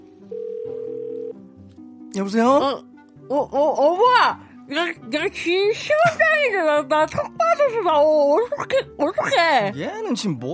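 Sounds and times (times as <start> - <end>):
telephone ringback tone of an outgoing call: 0.3 - 1.4
speech: 2.2 - 10.5.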